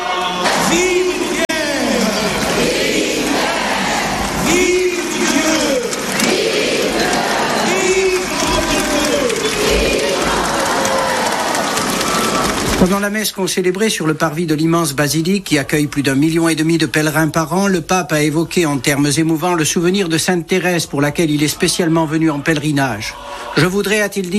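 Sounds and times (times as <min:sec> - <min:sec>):
people shouting in a huge outdoor crowd: 0:00.0 - 0:12.8, 0:23.0 - 0:23.7
applause from a huge outdoor crowd: 0:00.0 - 0:13.2
huge outdoor crowd welcoming the pope cheering: 0:00.0 - 0:13.2, 0:21.2 - 0:24.1
speech: 0:13.2 - 0:24.3.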